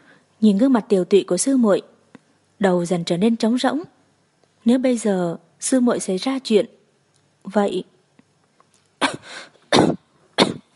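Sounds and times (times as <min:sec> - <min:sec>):
speech: 0:00.4 - 0:01.9, 0:02.6 - 0:04.0, 0:04.6 - 0:06.8, 0:07.4 - 0:07.9
person coughing violently and dryly: 0:09.0 - 0:10.7
ragged wheezy breath: 0:09.1 - 0:09.6.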